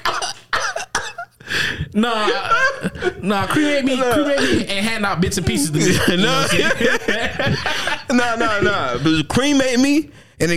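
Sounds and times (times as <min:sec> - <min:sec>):
laughter: 0:00.0 - 0:01.3, 0:02.0 - 0:09.3
voice imitating rough hacking coughs: 0:00.1 - 0:01.3
speech: 0:02.0 - 0:10.5.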